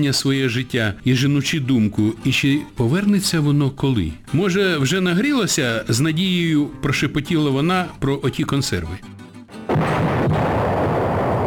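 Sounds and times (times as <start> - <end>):
speech: 0.0 - 9.2
distant explosion rumble: 9.7 - 11.4.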